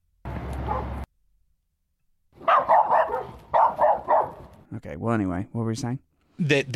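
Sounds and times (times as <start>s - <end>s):
dog barking: 0.6s - 1.0s, 2.4s - 4.5s
speech: 4.7s - 6.7s.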